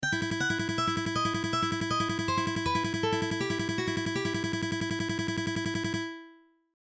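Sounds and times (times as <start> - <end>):
simple picking exercise: 0.0 - 6.1.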